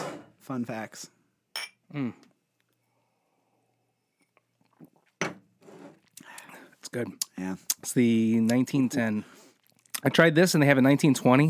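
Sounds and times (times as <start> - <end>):
speech: 0.5 - 1.2, 1.9 - 2.3, 6.9 - 9.4, 10.0 - 11.4
glasses clinking in a toast: 1.5 - 1.8
quiet sipping and soft mouth noises: 2.5 - 5.2, 5.9 - 7.9, 9.2 - 10.0.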